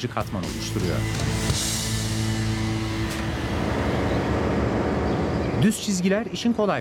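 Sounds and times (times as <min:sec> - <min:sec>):
speech: 0:00.0 - 0:01.8, 0:05.6 - 0:06.7
road-marking truck engine drone moving slowly: 0:00.2 - 0:06.7.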